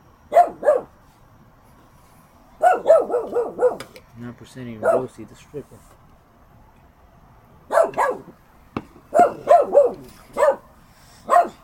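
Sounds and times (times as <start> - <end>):
dog barking: 0.3 - 1.0, 2.6 - 3.9, 4.8 - 5.1, 7.7 - 8.4, 9.1 - 11.6
speech: 3.2 - 6.0.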